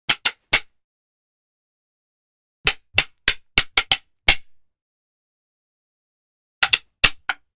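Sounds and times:
stick hits: 0.1 - 0.7, 2.7 - 4.6, 6.6 - 7.5.

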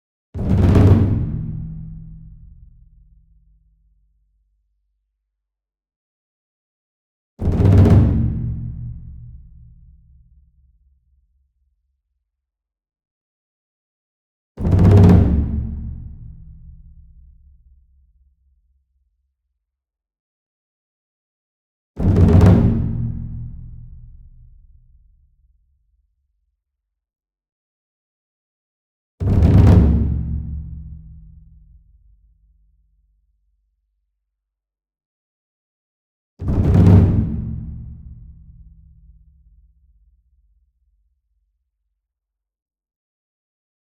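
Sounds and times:
ensemble taiko drum roll: 0.4 - 2.5, 7.4 - 9.8, 14.6 - 16.8, 22.0 - 24.0, 29.2 - 31.4, 36.4 - 38.8.

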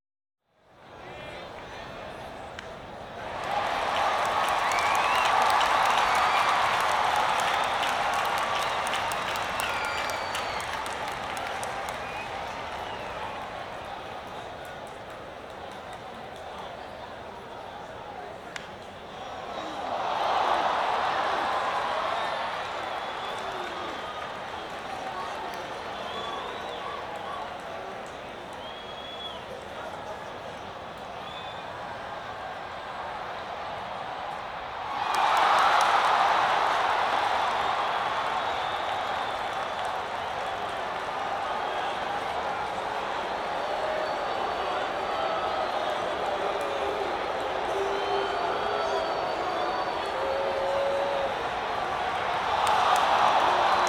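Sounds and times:
baseball stadium crowd ambience outdoors with people: 0.5 - 53.8.

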